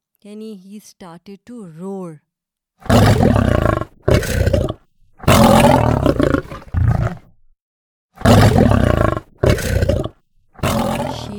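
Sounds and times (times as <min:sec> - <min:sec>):
speech: 0:00.2 - 0:03.6
lion roaring loudly: 0:02.8 - 0:07.4, 0:08.2 - 0:11.3.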